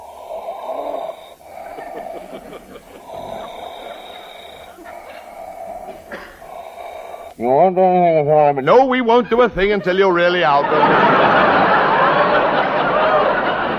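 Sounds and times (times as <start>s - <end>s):
man breathing deeply and slowly with wheezy snorting breaths: 0.0s - 7.4s
laughter: 1.4s - 6.4s, 9.0s - 13.7s
speech: 7.4s - 11.2s.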